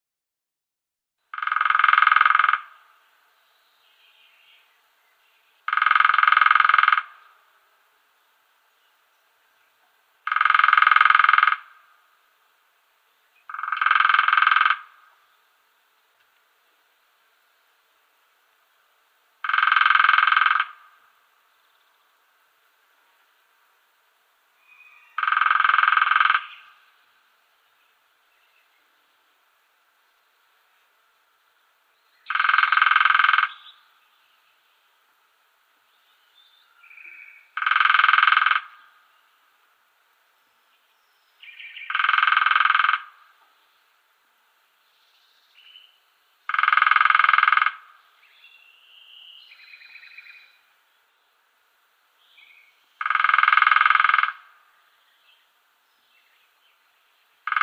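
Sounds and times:
Lesser Spotted Woodpecker drumming: 1.3s - 2.9s, 5.6s - 7.4s, 10.2s - 12.0s, 13.4s - 15.2s, 19.4s - 21.2s, 24.6s - 27.0s, 32.2s - 33.9s, 36.8s - 39.1s, 41.5s - 43.6s, 46.4s - 48.4s, 52.9s - 54.8s, 57.4s - 57.6s.

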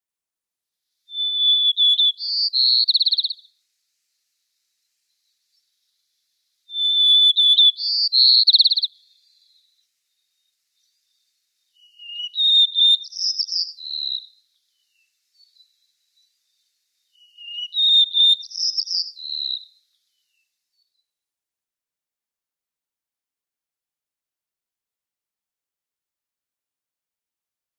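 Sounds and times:
White-crowned Sparrow singing: 1.1s - 3.5s, 6.7s - 21.0s.

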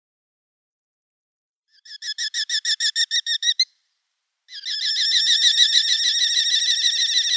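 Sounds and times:
Eurasian hobby nestling calling: 1.8s - 3.7s, 4.5s - 7.3s.

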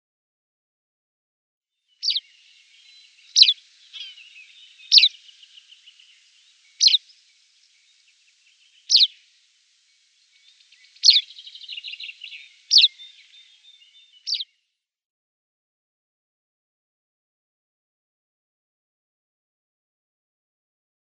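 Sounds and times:
Tawny Pipit call: 3.4s - 5.5s, 6.8s - 7.1s, 8.9s - 9.2s, 11.0s - 13.2s.

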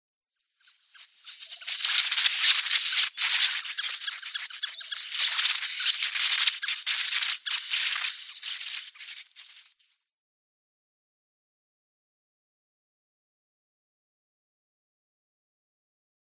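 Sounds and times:
downy young Eurasian hoopoe: 0.7s - 9.8s.

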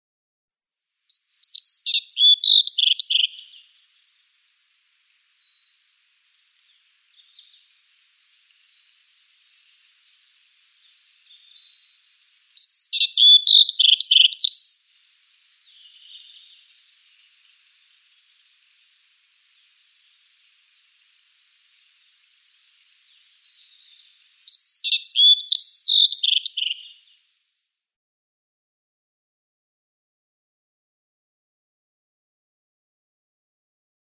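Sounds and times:
Black-faced Bunting song: 1.0s - 27.6s.

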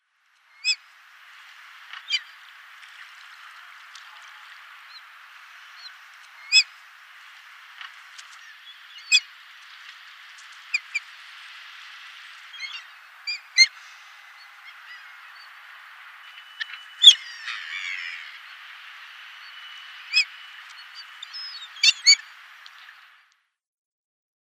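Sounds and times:
Pomarine Skua call in the Netherlands: 1.7s - 23.2s.

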